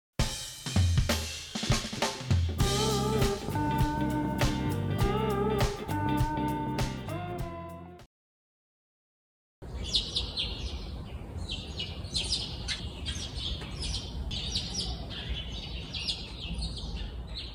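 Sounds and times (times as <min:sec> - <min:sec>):
steady hiss: 0:00.3 - 0:07.1
many wild birds chirping and twittering outdoors on a hot day: 0:09.6 - 0:17.5.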